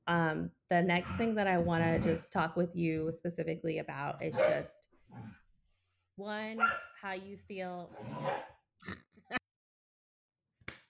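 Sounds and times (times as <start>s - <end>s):
speech: 0.1s - 5.4s, 6.2s - 9.0s
dogs barking: 4.3s - 5.3s, 6.6s - 7.0s, 8.0s - 8.6s.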